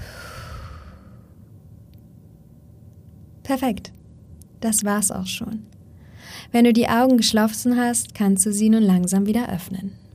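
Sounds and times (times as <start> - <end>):
slow relaxed exhale during a guided breathing exercise: 0.0 - 1.4
speech: 3.5 - 4.0, 4.6 - 10.0.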